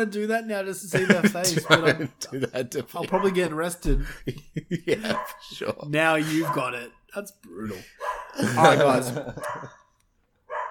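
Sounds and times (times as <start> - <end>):
speech: 0.0 - 9.8
laughter: 0.9 - 6.9, 7.6 - 9.8
dog barking: 3.2 - 3.4, 5.0 - 5.5, 6.2 - 6.7, 8.0 - 8.4, 9.3 - 9.8, 10.5 - 10.6.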